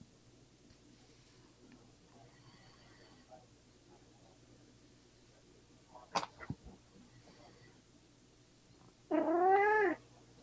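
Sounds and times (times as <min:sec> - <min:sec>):
cat meowing: 0:09.1 - 0:10.0.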